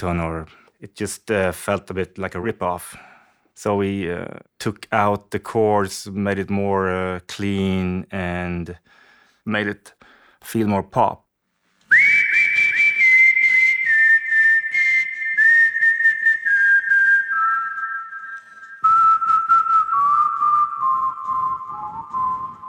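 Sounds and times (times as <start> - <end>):
speech: 0.0 - 11.2
whistled melody: 11.9 - 22.6.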